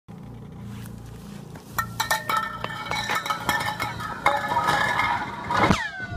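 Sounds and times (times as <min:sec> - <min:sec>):
ice dropping down an arctic borehole: 0:01.8 - 0:06.0.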